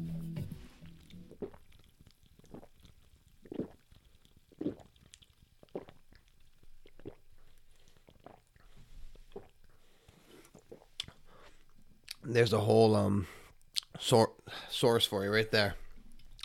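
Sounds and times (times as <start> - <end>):
hiss: 0.0 - 16.4
person gulping and swallowing fizzy lime seltzer water: 1.0 - 12.3, 16.0 - 16.4
speech: 12.3 - 13.4, 14.0 - 15.8.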